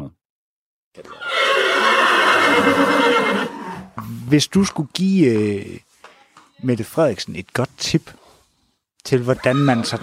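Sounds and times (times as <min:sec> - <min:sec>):
speech: 0:01.0 - 0:01.2, 0:04.0 - 0:05.9, 0:06.6 - 0:08.2, 0:09.0 - 0:10.0
horse whinnying: 0:01.0 - 0:04.0, 0:09.3 - 0:10.0.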